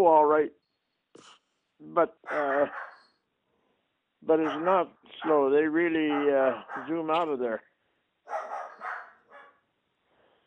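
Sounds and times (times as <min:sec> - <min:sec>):
speech: 0:00.0 - 0:00.6, 0:01.2 - 0:02.9, 0:04.2 - 0:07.7
family's pet dog barking: 0:02.2 - 0:03.1, 0:04.3 - 0:07.1, 0:08.3 - 0:09.7.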